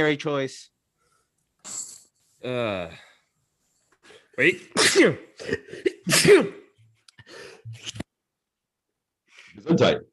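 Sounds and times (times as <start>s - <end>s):
speech: 0.0s - 0.7s, 1.6s - 3.1s, 4.4s - 6.6s, 9.6s - 10.1s
person sneezing: 4.7s - 6.7s.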